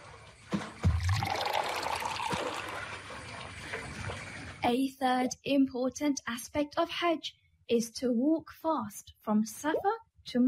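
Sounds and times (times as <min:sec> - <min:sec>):
water pouring into a bottle: 0:00.8 - 0:04.6
speech: 0:04.7 - 0:10.4.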